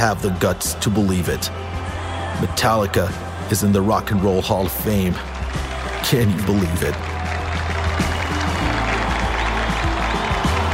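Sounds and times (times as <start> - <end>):
speech: 0.0 - 1.8, 2.4 - 5.3, 6.0 - 7.2
large audience cheering and clapping at a rock hall of fame induction: 0.0 - 10.7.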